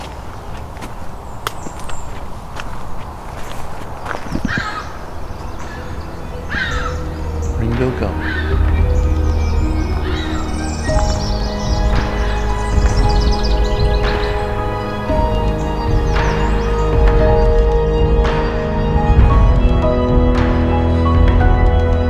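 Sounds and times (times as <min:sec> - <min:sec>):
black-throated green warblers singing: 0:00.0 - 0:22.0
dawn chorus chirps: 0:00.0 - 0:22.0
steady low rumble: 0:05.6 - 0:22.0.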